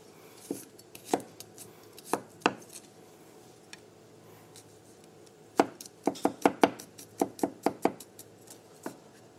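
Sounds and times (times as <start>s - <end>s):
knife chopping garlic on a cutting board for tahini sauce: 0.5s - 1.3s, 5.6s - 8.1s.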